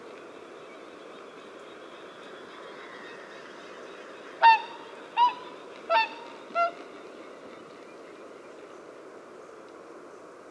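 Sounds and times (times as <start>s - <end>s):
soft steady background rush: 0.0s - 10.4s
whooper swan trumpeting honks: 4.4s - 6.8s.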